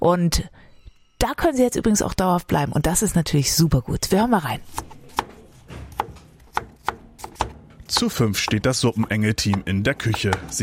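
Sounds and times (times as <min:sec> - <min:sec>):
speech: 0:00.0 - 0:05.0, 0:08.0 - 0:10.6
knife chopping leek in a kitchen: 0:04.2 - 0:10.6.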